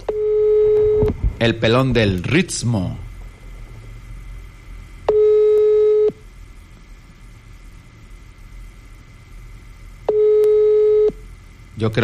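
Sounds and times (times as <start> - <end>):
telephone line tone after dialing an unanswered call: 0.0 - 1.1, 5.1 - 6.2, 10.1 - 11.2
low hum: 0.0 - 12.0
speech: 1.4 - 3.0, 11.8 - 12.0.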